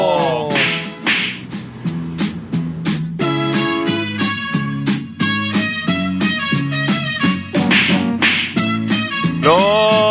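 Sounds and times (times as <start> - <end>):
bouncy rhythmic musical jingle: 0.0 - 9.7
sharp slap sound effects: 0.5 - 1.5, 7.6 - 8.8.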